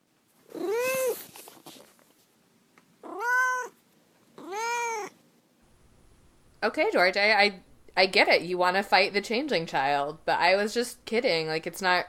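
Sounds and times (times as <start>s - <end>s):
cat meowing: 0.5s - 1.2s, 3.0s - 3.8s, 4.4s - 5.2s
speech: 6.6s - 12.0s.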